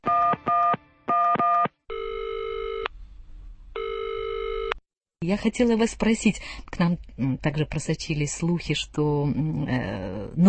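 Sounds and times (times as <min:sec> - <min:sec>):
long steady telephone tones: 0:01.4 - 0:02.9, 0:03.8 - 0:04.8
speech: 0:05.2 - 0:10.4.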